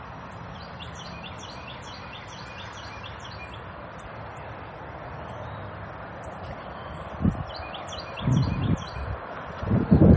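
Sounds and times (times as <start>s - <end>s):
birds chirping in a large garden after rain: 0.3s - 9.2s
gusty wind rustling: 3.8s - 10.1s.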